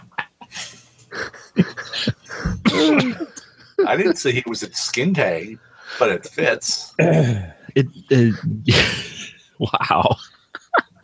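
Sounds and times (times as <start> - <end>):
strained choking fit with voiced wheezing: 0.0 - 3.9, 6.9 - 11.0
laughter: 0.0 - 11.0
person coughing into microphone: 1.8 - 3.6
speech: 3.9 - 10.3.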